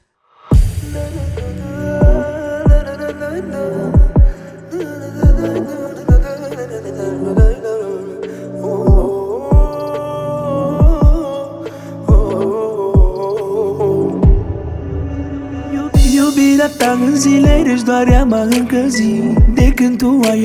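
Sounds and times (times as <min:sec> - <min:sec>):
song's instrumental intro: 0:00.4 - 0:07.8, 0:10.8 - 0:20.4
sustained synth or keyboard chords: 0:00.5 - 0:20.4
deep steady kick drum thumping: 0:02.0 - 0:02.9, 0:04.0 - 0:04.4, 0:05.2 - 0:05.4, 0:08.9 - 0:09.7, 0:10.8 - 0:11.2, 0:12.1 - 0:12.3, 0:13.0 - 0:13.2, 0:14.2 - 0:14.5, 0:16.0 - 0:16.2, 0:17.5 - 0:18.3, 0:19.4 - 0:19.8
speech: 0:17.2 - 0:20.4.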